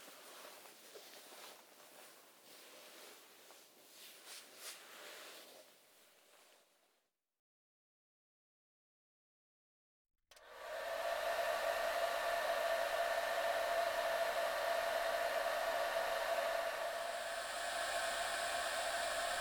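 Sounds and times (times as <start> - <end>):
hair dryer drying a person's hair: 10.3 - 19.3.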